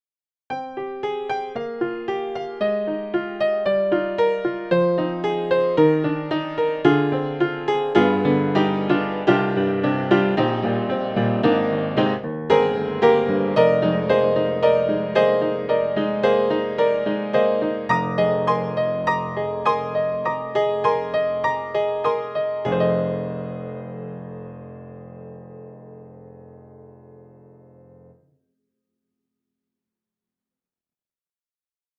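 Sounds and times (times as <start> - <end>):
upright piano with overtones: 0.5 - 28.3.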